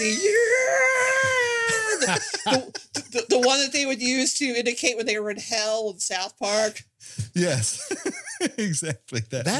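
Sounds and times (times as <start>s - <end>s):
speech: 0.0s - 0.9s, 2.1s - 9.5s
stock movie death scream sound effect: 0.0s - 2.1s
laughter: 1.5s - 3.7s, 7.7s - 9.0s.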